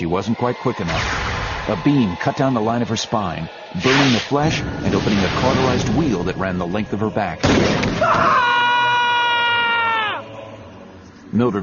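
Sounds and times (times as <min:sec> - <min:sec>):
speech: 0:00.0 - 0:08.6, 0:11.3 - 0:11.6
woman screaming in pain as a beam burns down her back: 0:08.0 - 0:10.2.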